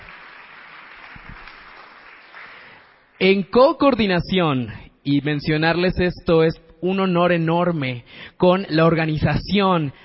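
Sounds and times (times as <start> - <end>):
audience applause: 0.0 - 3.1
speech: 3.2 - 10.0.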